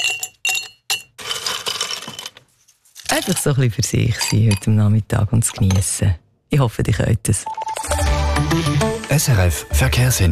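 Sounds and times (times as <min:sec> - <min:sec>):
ice cubes clinking in a glass: 0:00.0 - 0:02.4, 0:03.0 - 0:04.7
speech: 0:03.2 - 0:07.6, 0:08.4 - 0:10.2.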